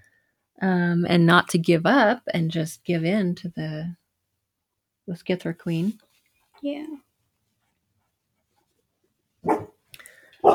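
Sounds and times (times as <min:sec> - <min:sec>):
speech: 0:00.6 - 0:04.0, 0:05.1 - 0:06.0, 0:06.6 - 0:07.0
dog barking: 0:09.4 - 0:09.8, 0:10.4 - 0:10.5.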